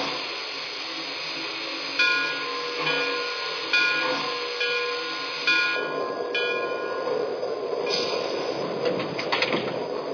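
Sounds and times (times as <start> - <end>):
train brake air hissing: 0.0 - 5.7, 7.6 - 8.8
train slowing into Elizabeth station: 0.0 - 10.1.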